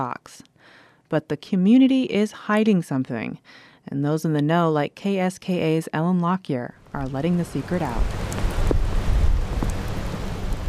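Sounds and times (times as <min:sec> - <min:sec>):
speech: 0:00.0 - 0:00.5, 0:01.1 - 0:08.3
howling wind on a stormy day near a road tunnel: 0:06.9 - 0:10.6
rain driven sideways on a stormy day near a road tunnel: 0:07.0 - 0:10.6.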